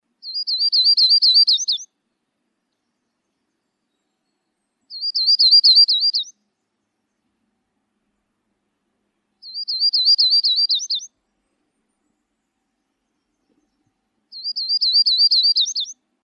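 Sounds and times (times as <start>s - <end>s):
bird singing a high rapid trilled phrase of zigzag notes: 0.2s - 1.9s, 2.8s - 6.8s, 9.4s - 11.2s, 12.0s - 16.0s.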